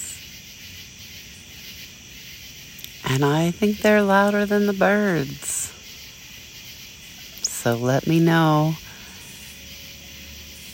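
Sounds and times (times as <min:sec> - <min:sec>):
crickets and other insects chirping outdoors on a deck: 0:00.0 - 0:10.7
speech: 0:03.1 - 0:05.5, 0:07.6 - 0:08.8.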